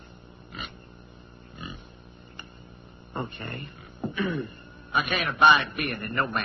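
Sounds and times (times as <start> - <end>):
quiet hiss: 0.0 - 6.4
pig grunting: 1.5 - 1.9
speech: 3.2 - 6.4.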